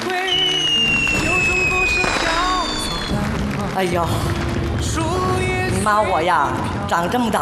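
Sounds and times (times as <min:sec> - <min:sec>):
fireworks whistling: 0:00.0 - 0:03.5
fireworks popping and crackling: 0:00.0 - 0:06.8
speech: 0:03.8 - 0:04.4, 0:05.8 - 0:07.3.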